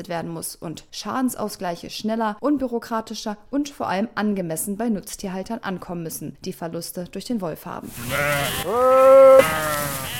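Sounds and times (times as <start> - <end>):
speech: 0.0 - 10.0
sheep in a flock bleating in knee-high grass on a meadow near Magdeburg: 7.9 - 10.1.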